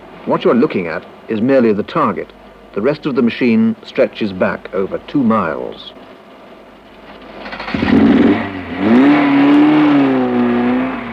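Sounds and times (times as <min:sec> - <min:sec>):
speech: 0:00.3 - 0:06.1
fast car engine revving and speeding along: 0:07.1 - 0:11.1.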